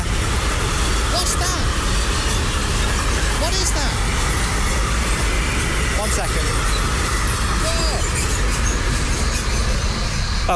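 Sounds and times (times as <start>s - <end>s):
freight train heading to Milan passing: 0.0s - 10.5s.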